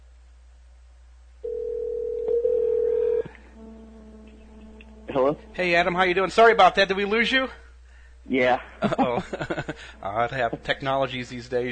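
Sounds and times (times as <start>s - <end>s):
telephone tone while placing a call: 1.4s - 3.4s
speech: 5.2s - 7.6s, 8.3s - 11.7s
laughter: 8.8s - 10.0s.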